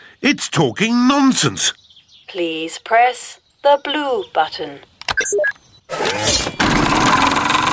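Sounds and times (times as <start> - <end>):
speech: 0.2 - 7.6
short electronic tones: 5.1 - 6.6.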